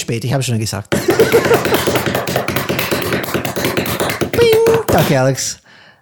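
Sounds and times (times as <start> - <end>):
speech: 0.0 - 2.8, 5.0 - 5.6
laughter: 1.0 - 2.0
improvised drumroll tapped on a hard surface: 1.0 - 5.2.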